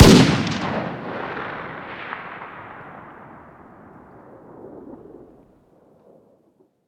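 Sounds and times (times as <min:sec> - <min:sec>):
distant 308 rifle gunshot outdoors: 0:00.0 - 0:03.7.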